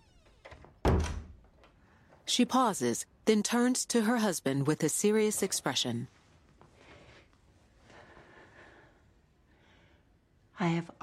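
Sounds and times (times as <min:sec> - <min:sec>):
door swinging shut with a solid low thunk: 0:00.0 - 0:01.4
speech: 0:02.3 - 0:06.2, 0:10.7 - 0:11.0.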